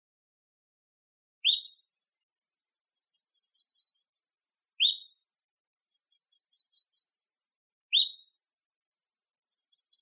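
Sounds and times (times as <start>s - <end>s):
Cordilleran flycatcher calling in Arizona: 4.8s - 5.2s.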